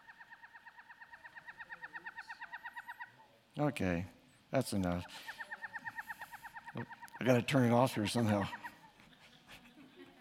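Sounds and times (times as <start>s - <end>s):
northern pygmy owl tooting played back from an iPad: 0.0s - 3.3s, 3.9s - 8.9s
speech: 3.6s - 5.4s, 6.8s - 8.6s
laughter: 6.7s - 10.2s.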